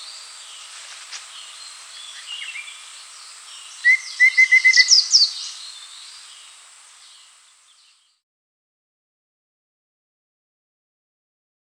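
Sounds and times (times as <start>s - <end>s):
high chirps: 0.0s - 6.6s
steady insect-like hiss: 0.0s - 8.2s
Rufous-fronted babbler song: 3.8s - 5.5s.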